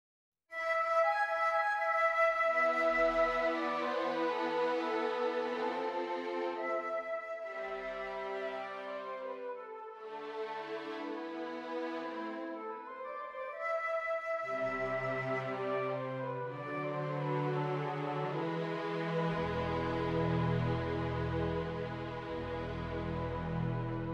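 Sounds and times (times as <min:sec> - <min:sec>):
flute melody: 0:00.5 - 0:24.1.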